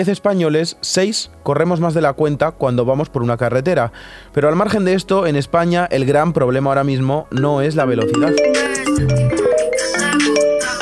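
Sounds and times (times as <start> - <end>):
speech: 0.0 - 9.5
mobile phone ringtone: 7.9 - 10.8.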